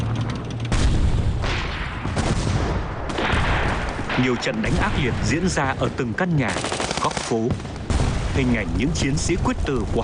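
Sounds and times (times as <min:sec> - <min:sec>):
artillery cannon fire booming in Hanoi: 0:00.0 - 0:06.0, 0:07.5 - 0:10.0
bursts of gunfire through the streets of Hanoi: 0:00.6 - 0:10.0
speech: 0:04.2 - 0:07.8, 0:08.4 - 0:10.0.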